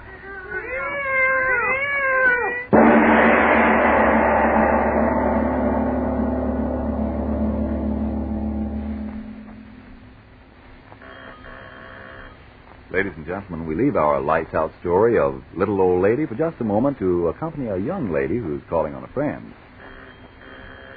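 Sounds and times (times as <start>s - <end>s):
cats yowling and caterwauling: 0.0s - 2.7s
loud sustained roar with low hum: 2.7s - 10.4s
speech: 13.0s - 19.6s.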